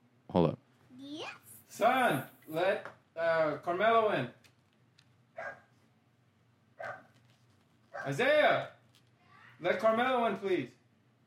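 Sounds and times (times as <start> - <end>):
speech: 0.3 - 0.6, 1.7 - 4.4, 8.0 - 8.7, 9.6 - 10.8
dog barking outside: 5.4 - 5.7, 6.8 - 7.1, 7.9 - 8.2.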